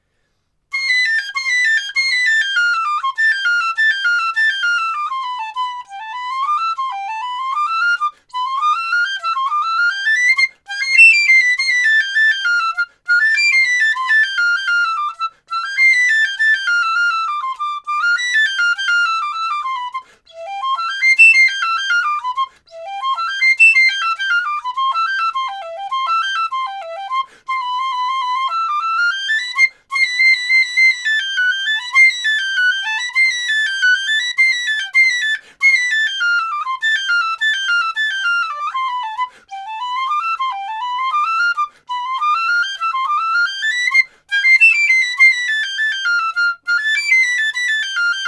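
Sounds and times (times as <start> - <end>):
Yamaha YPC32 piccolo: 0.7 - 48.2.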